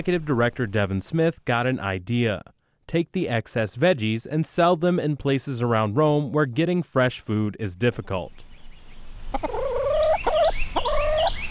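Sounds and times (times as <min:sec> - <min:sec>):
speech: 0:00.0 - 0:08.5, 0:09.3 - 0:09.6
chickens clucking on a farm in Rome: 0:09.2 - 0:11.4.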